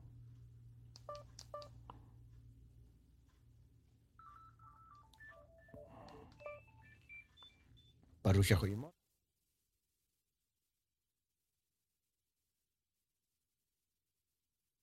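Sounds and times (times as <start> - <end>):
low steady hum: 0.0 - 8.0
telephone dialing tones testing a phone line: 1.0 - 1.7, 4.2 - 8.0
speech: 1.1 - 1.9, 8.2 - 9.0.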